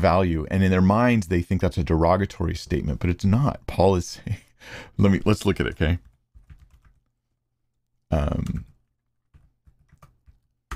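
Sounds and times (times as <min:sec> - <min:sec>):
speech: 0:00.0 - 0:06.1, 0:08.1 - 0:08.7
typing on a sticky computer keyboard with something spilled on it: 0:06.0 - 0:07.1, 0:08.3 - 0:10.7.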